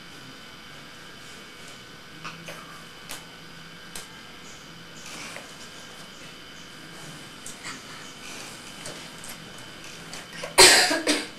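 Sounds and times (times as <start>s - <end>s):
person coughing harshly: 10.6s - 11.3s.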